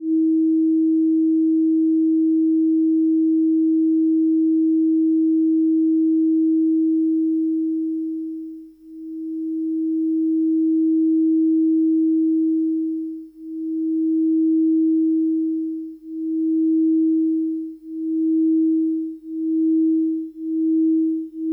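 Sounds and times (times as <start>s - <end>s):
detuned sine tones in harmony: 0.0s - 8.5s, 9.2s - 21.5s.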